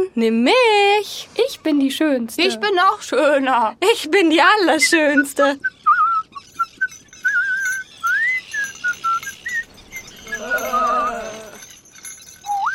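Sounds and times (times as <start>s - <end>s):
speech: 0.2s - 5.8s
person whistling a short lilting tune: 5.6s - 9.7s, 12.4s - 12.7s.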